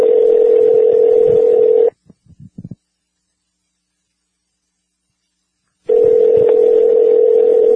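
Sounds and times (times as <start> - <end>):
steady telephone tone: 0.0 - 2.0, 5.9 - 7.7.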